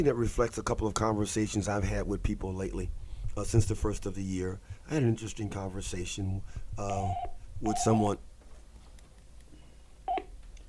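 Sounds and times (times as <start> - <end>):
speech: 0.0 - 8.3
faint hiss: 0.0 - 10.6
electronic phone beep two-tone chirp: 7.0 - 8.0, 10.1 - 10.3.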